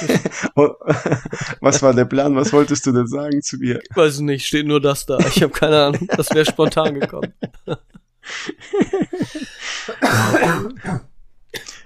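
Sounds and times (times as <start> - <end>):
laughter: 0.0 - 2.8, 5.1 - 10.1
speech: 0.0 - 11.1
person coughing: 9.2 - 11.8
harsh throat clearing: 10.0 - 11.8.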